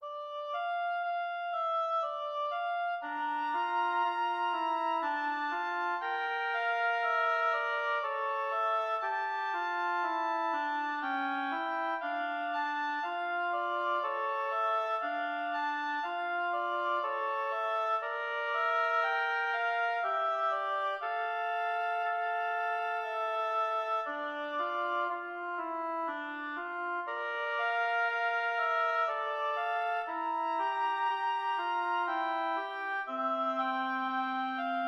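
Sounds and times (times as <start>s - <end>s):
easy oboe duo in D minor played adagio: 0.0s - 34.8s.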